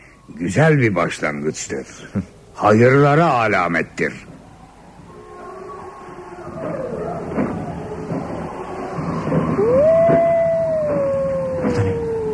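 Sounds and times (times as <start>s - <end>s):
wolves howling: 0.0s - 12.3s
speech: 0.3s - 4.4s
faint broken cries: 5.1s - 12.3s.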